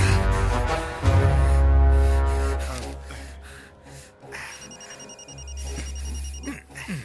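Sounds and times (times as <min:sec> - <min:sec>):
loud droning low musical background: 0:00.0 - 0:07.0
phone ringing with an electronic melodic ringtone: 0:04.4 - 0:06.5.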